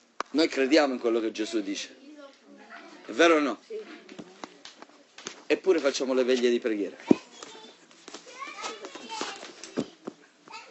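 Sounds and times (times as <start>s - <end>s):
speech: 0.3s - 2.0s, 3.1s - 4.0s, 5.5s - 7.2s
children chattering and calling out across a room: 1.4s - 5.2s, 6.8s - 10.6s
children shouting: 8.3s - 10.6s.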